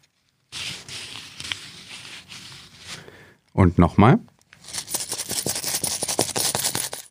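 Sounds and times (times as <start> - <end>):
crisp paper rustling of banknotes: 0.0 - 3.3, 4.6 - 7.0
speech: 3.6 - 4.3
metallic clicks and clinks of coins: 4.6 - 7.0.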